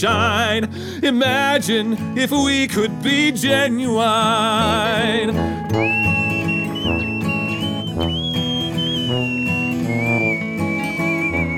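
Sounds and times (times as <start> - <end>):
speech: 0.0 - 6.1
loud instrumental music backing: 1.3 - 11.5
person whistling a melody: 4.8 - 11.5.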